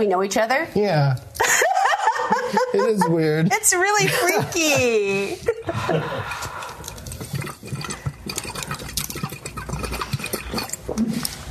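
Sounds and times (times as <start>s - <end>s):
speech: 0.0s - 1.5s, 2.7s - 6.5s
laughter: 1.4s - 6.8s
water pouring and gurgling into a pipe: 6.3s - 11.4s.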